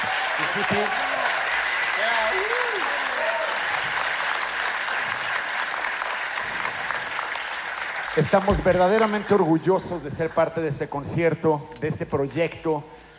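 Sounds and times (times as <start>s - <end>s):
people whooping and cheering: 0.0s - 7.2s
large concert audience applause: 0.0s - 10.6s
speech: 0.4s - 1.1s, 8.2s - 13.1s.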